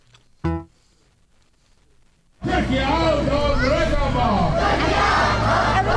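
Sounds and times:
sharp shout: 2.4s - 5.2s
large crowd chanting and shouting outdoors at a street rally: 2.4s - 5.9s.

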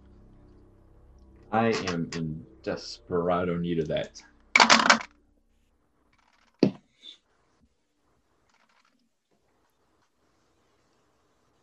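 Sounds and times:
speech: 1.5s - 4.9s
dice rattling on a table during a tabletop role-playing game: 4.6s - 5.1s, 6.2s - 6.7s, 8.5s - 9.0s.

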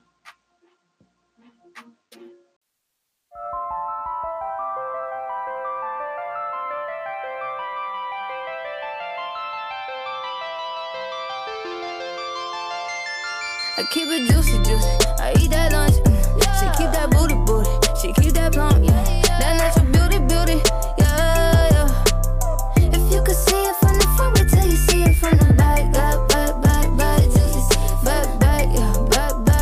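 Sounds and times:
pop rap track with synth-driven groove: 13.5s - 29.6s
speech: 13.8s - 16.1s, 16.7s - 18.8s.

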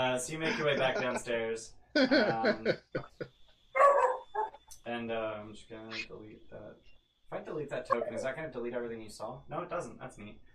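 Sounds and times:
laughter: 0.0s - 3.2s, 7.6s - 8.6s
speech: 0.0s - 3.4s, 4.8s - 10.5s
dog barking sound effect: 3.8s - 4.6s, 7.9s - 8.2s.

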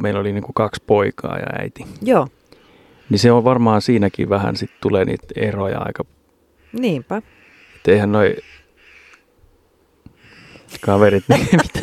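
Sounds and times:
speech: 0.0s - 2.4s, 3.1s - 8.6s, 10.7s - 11.8s
crow giving harsh raspy caws: 2.6s - 5.3s, 6.5s - 9.4s, 10.1s - 11.5s
laughter: 10.7s - 11.8s.

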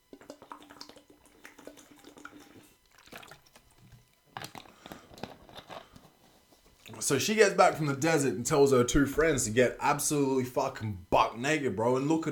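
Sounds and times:
wet slurps: 0.0s - 6.0s
swallowing: 0.0s - 6.1s
person sipping a drink: 0.0s - 6.2s
crinkly handling noises: 3.4s - 7.0s
speech: 7.0s - 12.3s.

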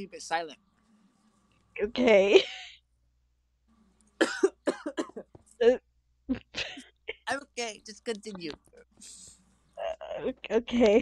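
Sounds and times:
speech: 0.0s - 0.7s, 1.8s - 2.7s, 4.2s - 4.6s, 5.6s - 11.0s
person coughing: 4.2s - 5.3s, 6.3s - 6.9s.

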